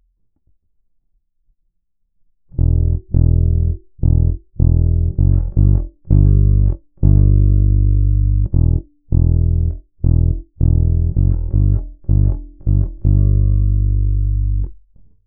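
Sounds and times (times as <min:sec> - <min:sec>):
bass prechorus: 0:02.5 - 0:14.8.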